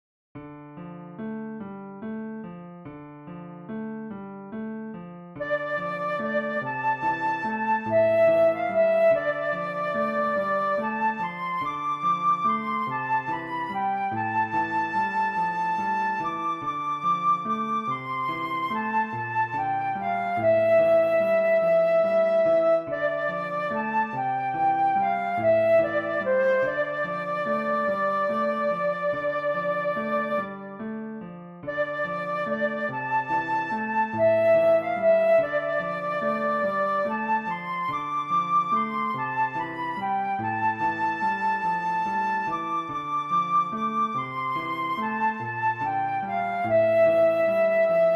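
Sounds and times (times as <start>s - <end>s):
piano accompaniment: 0.4s - 48.1s
flute melody: 5.3s - 31.0s, 31.6s - 48.1s.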